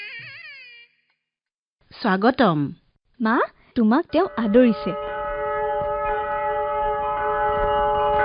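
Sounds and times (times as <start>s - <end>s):
speech: 2.0s - 5.1s
conch shell blown to welcome a guest: 4.3s - 8.1s.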